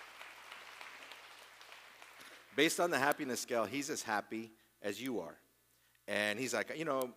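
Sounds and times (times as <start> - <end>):
audience applause: 0.0 - 2.6
speech: 2.6 - 5.4, 6.1 - 7.1.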